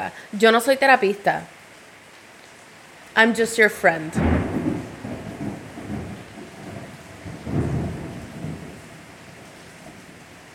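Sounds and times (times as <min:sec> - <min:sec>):
speech: 0:00.0 - 0:01.6, 0:03.2 - 0:04.4
steady rainfall during a storm in Puerto Rico: 0:00.0 - 0:10.5
low rumbling thunder during a storm in Puerto Rico: 0:04.2 - 0:10.5.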